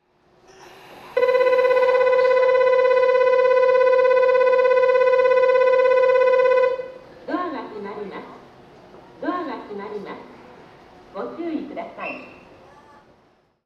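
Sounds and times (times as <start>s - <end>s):
train station platform departure bell: 1.2s - 7.0s.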